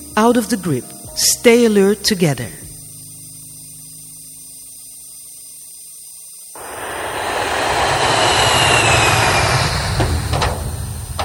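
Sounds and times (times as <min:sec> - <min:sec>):
speech: 0:00.2 - 0:02.6
airplane engine roar flying by: 0:06.6 - 0:11.2.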